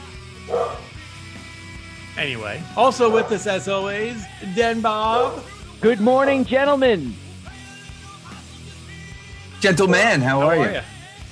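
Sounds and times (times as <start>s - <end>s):
dog bark: 0.5s - 0.9s, 3.0s - 3.5s, 5.1s - 5.5s
speech: 2.2s - 7.2s, 9.6s - 10.9s.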